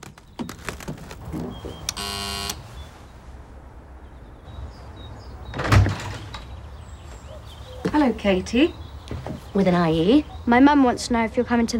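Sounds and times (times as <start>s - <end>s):
front door doorbell buzzing ring: 2.0s - 2.6s
speech: 8.0s - 8.8s, 9.5s - 11.7s.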